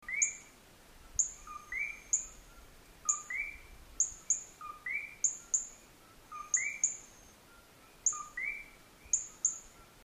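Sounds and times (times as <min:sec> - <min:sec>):
Eleutherodactylus gryllus frog thin chirping in El Yunque National Forest Puerto Rico: 0:01.2 - 0:07.3, 0:08.0 - 0:09.7.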